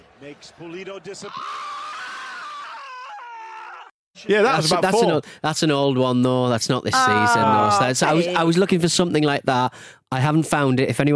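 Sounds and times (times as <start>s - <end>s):
speech: 0.2s - 1.7s, 4.2s - 11.1s
man screaming high-pitched: 1.3s - 3.9s, 7.0s - 8.4s.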